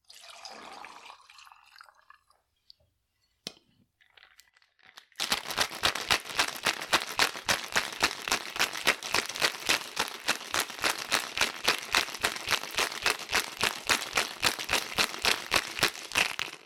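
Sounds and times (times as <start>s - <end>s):
rum and lime juice pouring into a cocktail shaker with ice: 0.0s - 2.4s, 4.0s - 16.6s
ice rattling in a cocktail shaker being shaken: 4.0s - 16.6s.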